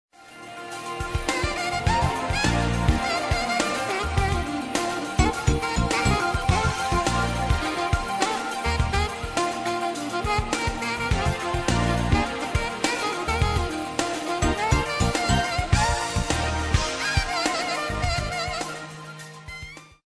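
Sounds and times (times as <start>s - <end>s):
jazz pop music: 0.2s - 20.0s.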